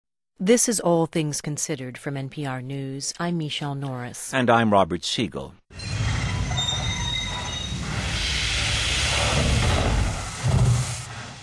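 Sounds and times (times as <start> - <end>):
speech: 0.4 - 5.9
approaching train rumbling: 5.7 - 11.4
train metal wheels squealing: 5.7 - 11.4.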